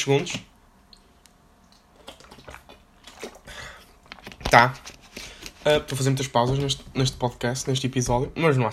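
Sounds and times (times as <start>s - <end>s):
speech: 0.0s - 0.5s, 4.5s - 4.9s, 5.6s - 8.7s
person sipping water: 0.9s - 4.4s
soft wet swallowing and gulping: 1.7s - 4.4s.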